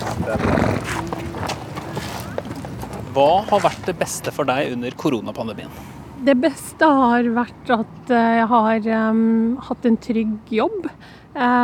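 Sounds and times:
horse hoof thuds in a farmyard: 0.0 - 4.0
horses snorting in a farmyard: 0.0 - 4.3
steady farmyard bustle: 0.0 - 7.0
faint indistinct voices: 0.0 - 9.9
speech: 0.3 - 0.6, 3.2 - 11.6.

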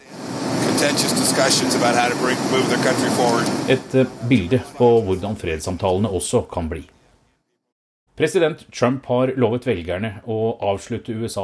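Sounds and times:
aircraft cabin noise during turbulence in the press section at the back of the plane: 0.0 - 4.8
speech: 0.8 - 7.0, 8.2 - 11.4.

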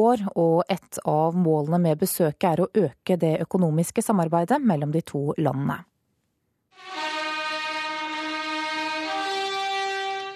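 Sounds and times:
speech: 0.0 - 5.9
trumpet fanfare greeting a presidential couple at a dinner in New Delhi: 6.8 - 10.3.

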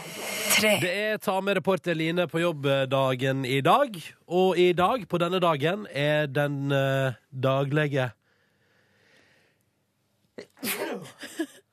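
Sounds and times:
person sneezing: 0.0 - 0.9, 10.4 - 11.4
speech: 0.6 - 8.2, 10.4 - 11.5.

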